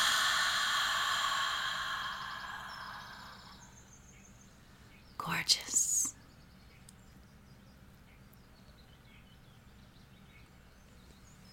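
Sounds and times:
long soft exhale during a guided breathing exercise: 0.0s - 3.8s
speech: 5.4s - 5.8s.

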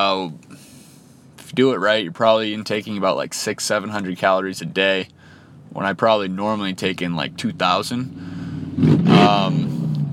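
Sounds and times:
speech: 0.0s - 0.5s, 1.5s - 9.7s
motorcycle engine revving while driving by: 8.0s - 10.1s.

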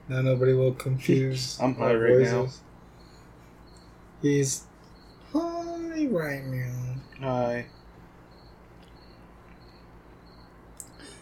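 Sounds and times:
lone cricket chirping in short trills: 0.0s - 11.2s
quiet steady room hiss: 0.0s - 11.2s
speech: 0.1s - 2.7s, 4.2s - 4.7s, 5.3s - 7.8s.

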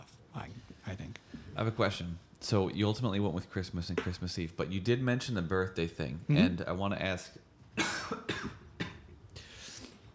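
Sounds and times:
speech: 1.6s - 8.6s
harsh raspy coughing fit: 7.8s - 9.2s.

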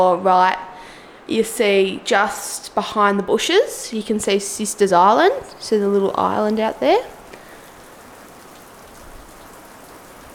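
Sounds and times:
speech: 0.0s - 0.7s, 1.3s - 7.2s
steady rain pattering on glass: 3.9s - 10.3s.

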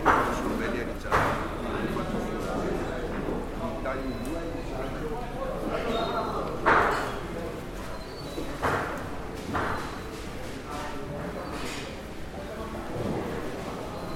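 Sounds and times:
sharp knocks and bangs in a fish market: 0.0s - 1.6s, 6.6s - 7.2s, 8.6s - 10.1s
crowd murmur of overlapping voices in a busy fish market in Venice: 0.0s - 14.1s.

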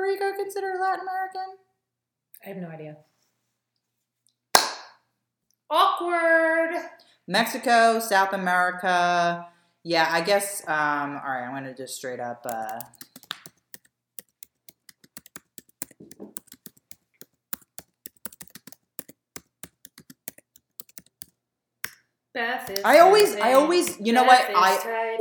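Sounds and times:
speech: 0.1s - 1.7s, 2.4s - 3.1s, 5.7s - 13.0s, 22.4s - 25.1s
typing on a computer keyboard: 12.5s - 22.0s.

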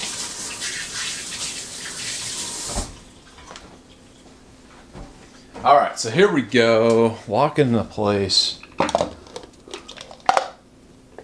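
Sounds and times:
running tap water with hands being washed under it: 0.0s - 3.6s
speech: 5.6s - 8.6s.

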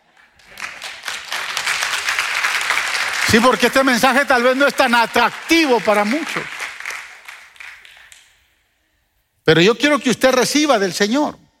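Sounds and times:
audience applauding in a reverberant church: 0.0s - 8.4s
speech: 3.3s - 6.6s, 9.5s - 11.4s.

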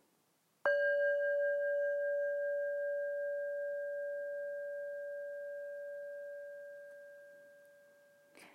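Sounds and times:
singing bowl struck and ringing: 0.7s - 8.3s.

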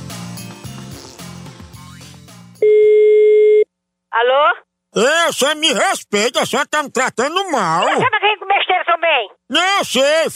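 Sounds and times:
telephone ringing tone on an outgoing call: 2.6s - 3.6s
speech: 5.0s - 8.5s, 9.1s - 10.3s.

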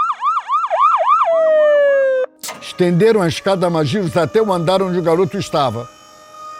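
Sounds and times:
fire truck siren wailing as fire vehicles arrive at a hospital: 0.0s - 6.5s
brief hissing burst: 2.4s - 6.5s
speech: 2.8s - 6.0s.

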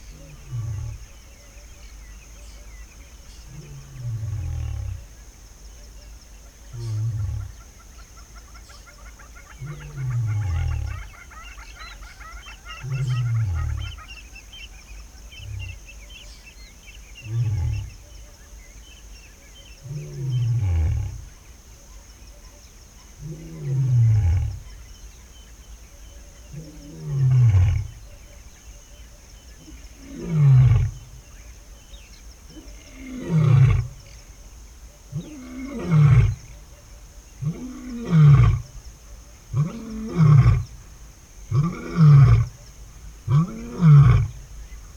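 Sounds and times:
male lion advertising his territory at Kanderi swamp: 0.0s - 1.3s, 3.4s - 5.2s, 15.4s - 15.9s, 17.2s - 18.1s, 19.8s - 21.4s, 23.2s - 24.8s, 26.6s - 28.1s, 29.6s - 31.3s, 32.5s - 34.2s, 35.1s - 36.7s, 37.4s - 38.8s, 39.5s - 40.9s, 41.5s - 44.5s
thin dawn chorus at Kanderi swamp in Tsavo NP in the dry season: 0.0s - 44.9s.

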